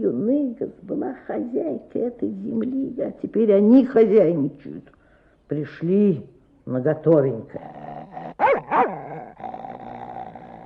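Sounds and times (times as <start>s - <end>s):
speech: 0.0s - 9.4s
dog snarling and growling: 7.5s - 10.6s.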